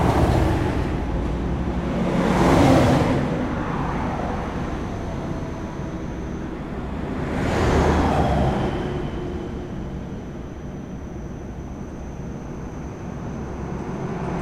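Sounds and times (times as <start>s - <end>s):
cars driving by: 0.0s - 14.4s
low steady traffic rumble: 0.0s - 14.4s
faint high whine: 3.2s - 14.4s.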